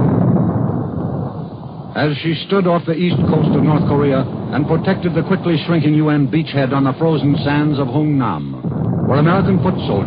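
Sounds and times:
16-inch battleship guns firing: 0.0 - 10.0
speech: 2.0 - 10.0.

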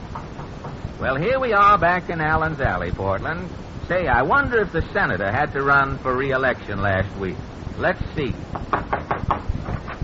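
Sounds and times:
speech: 1.0 - 9.4
knocking on a door: 8.5 - 9.9.

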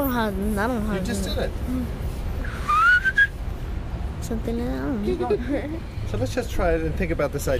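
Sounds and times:
speech: 0.2 - 2.0, 4.2 - 7.5
person whistling in imitation of a blackbird's song: 2.5 - 3.3.

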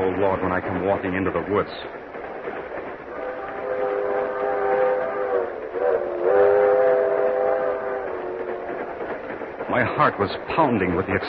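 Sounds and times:
train rumbling along the rails: 0.0 - 11.2
speech: 0.2 - 2.1, 9.7 - 11.2
sustained train horn tone: 3.1 - 8.6.

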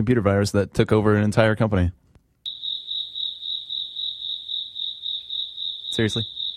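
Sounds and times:
speech: 0.0 - 2.0, 6.0 - 6.4
cricket chirping indoors in a laundry room: 2.4 - 6.5.

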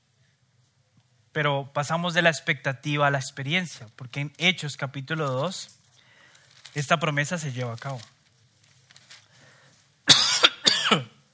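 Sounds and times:
speech: 1.4 - 5.8, 6.8 - 8.2, 10.9 - 11.1
harsh raspy coughs: 10.1 - 11.2.

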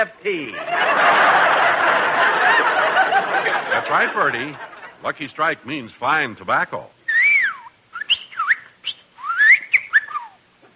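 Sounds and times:
speech: 0.0 - 1.3, 3.8 - 7.0
laughter: 0.4 - 5.0
bird whistling and chirping: 7.1 - 10.4.

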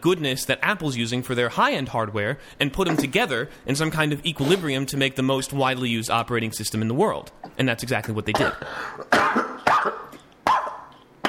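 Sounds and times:
speech: 0.0 - 10.0
person coughing in a harsh fit: 8.3 - 11.2.

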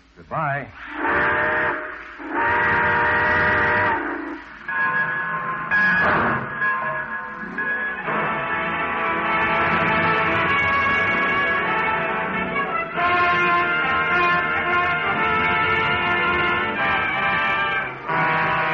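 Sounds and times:
speech: 0.2 - 1.1
steady rush of steam hiss from steam train: 0.8 - 6.5
steam train whistle as the train departs: 0.8 - 6.6, 7.9 - 18.7.

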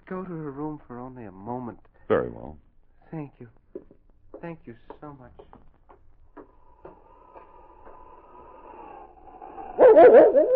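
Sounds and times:
speech: 0.1 - 3.6
dog whining: 9.6 - 10.5
dog barking excitedly at a scent through a door: 9.8 - 10.5.

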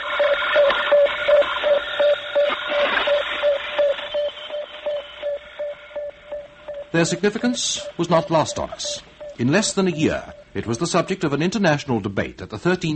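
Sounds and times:
Sputnik 1 satellite radio beeps: 0.0 - 12.1
loud radio hiss and static: 0.0 - 12.9
speech: 7.0 - 12.9.

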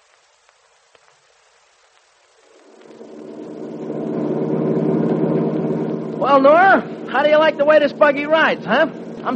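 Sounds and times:
truck engine rumbling and revving: 2.5 - 9.3
speech: 6.2 - 9.3.

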